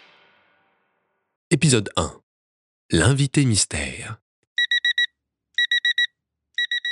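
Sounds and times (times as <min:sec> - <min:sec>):
speech: 0:01.6 - 0:02.2, 0:02.9 - 0:04.2
phone alarm beeping in bursts of bright electronic tones: 0:04.6 - 0:06.9.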